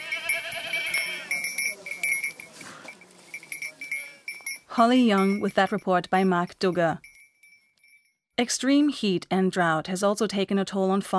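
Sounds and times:
herd of grazing firefighter goats bleating: 0:00.0 - 0:01.6, 0:03.7 - 0:04.3
metallic goat bells clanking and jingling: 0:00.0 - 0:08.1
speech: 0:04.8 - 0:07.1, 0:08.4 - 0:11.1.

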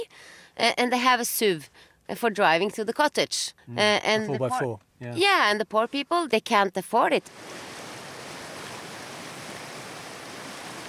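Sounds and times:
speech: 0:00.0 - 0:07.7
raging stream rushing down to the sea: 0:07.3 - 0:10.8.

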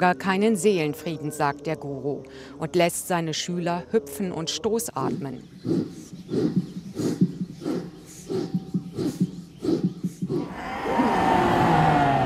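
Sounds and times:
speech: 0:00.0 - 0:07.1
yoga students giving short rhythmic vocal bursts: 0:05.1 - 0:12.2
yoga students roaring like lions: 0:10.3 - 0:12.2.

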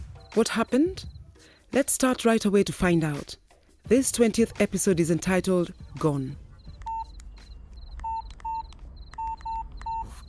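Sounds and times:
speech: 0:00.4 - 0:01.1, 0:01.7 - 0:06.4
telephone keypad dialing tones: 0:06.8 - 0:07.2, 0:08.0 - 0:10.2.

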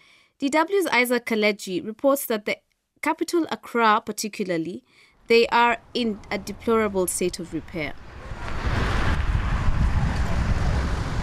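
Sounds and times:
speech: 0:00.4 - 0:08.1
trucks and motorcycles rumbling through city street traffic in Jamestown Accra Ghana: 0:05.5 - 0:11.2.

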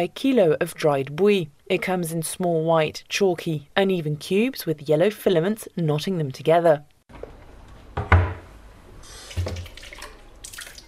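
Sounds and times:
speech: 0:00.0 - 0:06.9
water splashing and running while rinsing dried baobab pulp by hand: 0:09.2 - 0:10.8.

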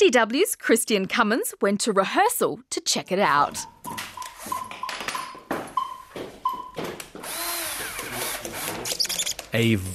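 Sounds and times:
speech: 0:00.0 - 0:04.6, 0:09.5 - 0:09.9
power drill boring into a cucumber: 0:07.2 - 0:09.4.

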